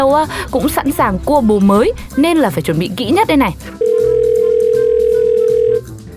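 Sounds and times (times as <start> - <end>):
speech: 0.0 - 3.8
faint music: 0.0 - 6.1
telephone ringback tone while calling: 3.8 - 5.9.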